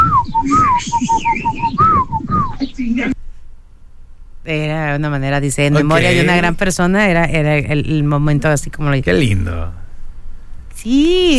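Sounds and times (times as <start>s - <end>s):
person whistling a melodic call to come back: 0.0s - 2.6s
speech: 4.5s - 9.8s, 10.8s - 11.3s.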